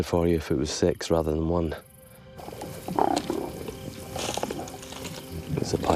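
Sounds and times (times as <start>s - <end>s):
speech: 0.0s - 3.2s, 5.6s - 5.9s
lions growling and snarling while feeding on an antelope kill at night: 2.4s - 5.2s.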